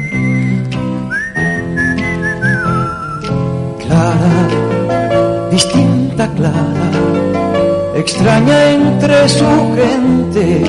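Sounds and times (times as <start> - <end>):
whistled melody in a song: 0.0 - 3.5
instrumental backing: 0.0 - 10.6
speech: 8.0 - 10.6.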